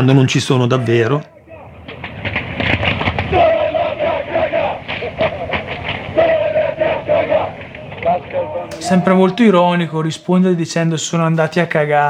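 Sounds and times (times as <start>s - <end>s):
speech: 0.0s - 1.4s, 8.8s - 12.0s
large stadium crowd of football fans chanting a taunt: 1.2s - 9.5s.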